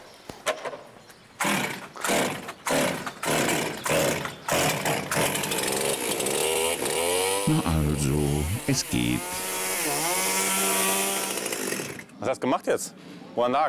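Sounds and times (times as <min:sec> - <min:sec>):
chainsaw starting and revving after its air filter was cleaned: 0:01.4 - 0:07.5, 0:09.2 - 0:12.1
speech: 0:07.5 - 0:09.5, 0:12.2 - 0:13.6.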